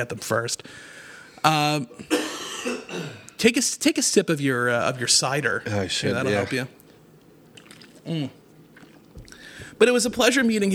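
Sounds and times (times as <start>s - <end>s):
speech: 0.0s - 6.8s, 8.0s - 8.4s, 9.8s - 10.7s
person coughing: 2.0s - 3.3s.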